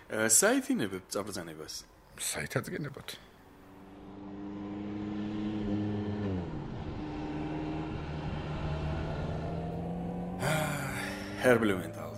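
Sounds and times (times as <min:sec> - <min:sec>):
speech: 0:00.1 - 0:03.3, 0:11.4 - 0:12.0
car engine droning during a test drive: 0:03.4 - 0:12.1.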